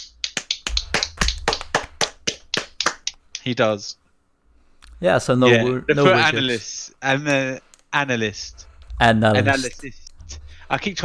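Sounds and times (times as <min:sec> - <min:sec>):
hand clapping: 0:00.0 - 0:03.5
speech: 0:03.4 - 0:04.0, 0:05.0 - 0:11.0.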